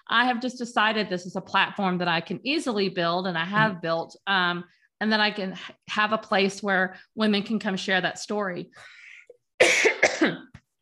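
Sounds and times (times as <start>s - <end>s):
speech: 0.1s - 9.0s, 9.6s - 10.5s
person coughing: 9.6s - 10.5s.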